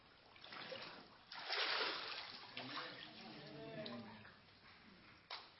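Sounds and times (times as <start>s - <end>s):
water splashing as a woman is dunked during a church baptism by immersion: 0.0s - 3.4s
water dripping and rippling: 0.0s - 5.3s.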